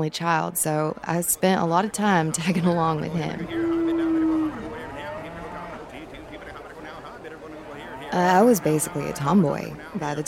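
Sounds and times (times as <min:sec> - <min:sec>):
speech: 0:00.0 - 0:03.7, 0:08.1 - 0:10.2
single cow mooing loudly: 0:02.0 - 0:09.8.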